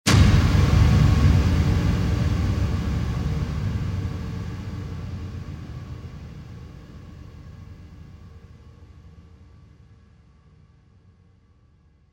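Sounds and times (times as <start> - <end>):
hit on a silo: 0.1 - 8.6.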